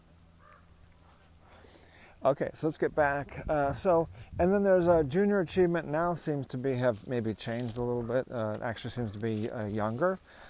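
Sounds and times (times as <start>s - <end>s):
low steady hum: 0.0s - 10.4s
crows cawing: 0.4s - 0.8s
speech: 2.2s - 10.4s.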